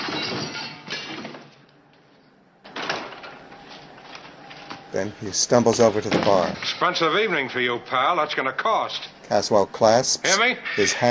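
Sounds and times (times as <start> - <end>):
wooden chair being smashed apart: 0.0 - 1.6
speech: 4.9 - 11.0.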